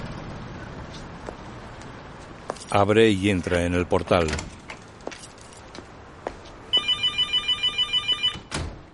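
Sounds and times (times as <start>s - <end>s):
speech: 2.7s - 4.5s
mobile phone ringing with a high electronic ringtone in a flat: 6.7s - 8.5s.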